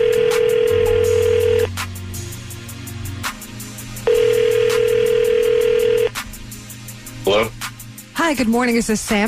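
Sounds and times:
telephone tone beeps while placing a call: 0.0s - 1.7s, 4.1s - 6.1s
speech: 8.3s - 9.2s.

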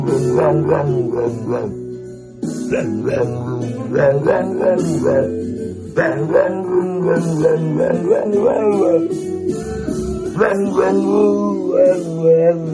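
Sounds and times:
dog howling and yipping along to music: 0.0s - 1.8s, 2.7s - 5.4s, 6.0s - 9.1s, 10.2s - 12.7s
loud music track: 0.0s - 12.7s.

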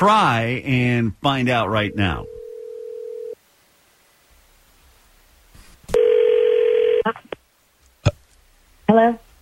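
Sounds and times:
speech: 0.0s - 2.4s, 9.0s - 9.2s
person answering phone: 1.8s - 3.4s, 6.0s - 7.1s
telephone line tone: 1.9s - 3.4s, 6.0s - 7.0s.

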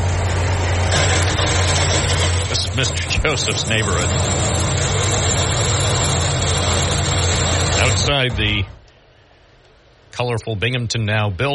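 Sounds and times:
street traffic noise at a Binghamton intersection with utility work: 0.0s - 8.8s
vehicle engine idling at a street intersection in Binghamton: 0.0s - 8.8s
speech: 2.8s - 4.5s, 8.0s - 8.8s, 10.2s - 11.5s.

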